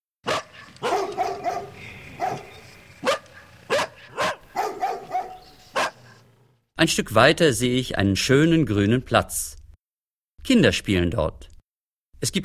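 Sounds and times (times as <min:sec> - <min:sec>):
dogs barking at dusk beside a forest: 0:00.2 - 0:06.4
speech: 0:06.8 - 0:09.6, 0:10.4 - 0:11.5, 0:12.2 - 0:12.4.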